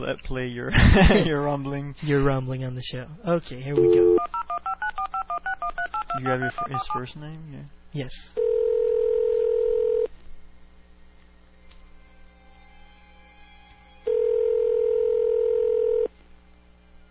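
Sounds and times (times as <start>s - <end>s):
speech: 0.0s - 4.2s, 6.2s - 8.4s
telephone line ringing tone: 3.8s - 7.0s, 8.4s - 10.1s, 14.0s - 16.1s.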